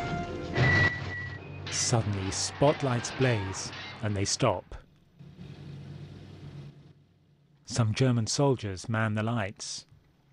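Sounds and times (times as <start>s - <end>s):
speech: 1.8s - 4.8s, 7.7s - 9.9s
military vehicles engine rumble driving along a dusty desert: 4.7s - 7.6s.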